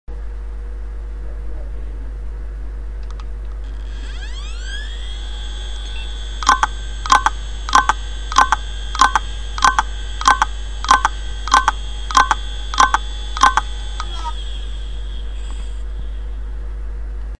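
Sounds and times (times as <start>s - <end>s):
FUJITSU hard drive knocking caused by a faulty magnetic head block: 4.0s - 15.8s.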